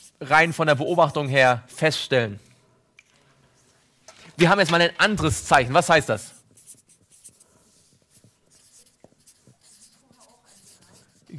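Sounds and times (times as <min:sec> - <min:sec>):
speech: 0:00.2 - 0:02.5, 0:04.4 - 0:06.4
marker scratching and squeaking across a board: 0:06.4 - 0:11.3.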